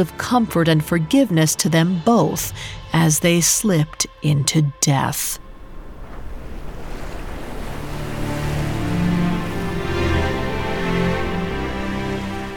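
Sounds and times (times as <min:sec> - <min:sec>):
speech: 0:00.0 - 0:05.4
sea waves lapping against the shore: 0:05.4 - 0:12.5.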